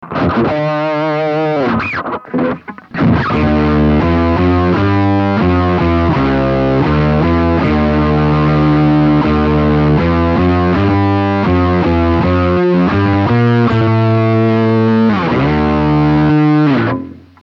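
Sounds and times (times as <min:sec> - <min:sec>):
Pearl octaver effect set one octave down: 0:00.0 - 0:17.2.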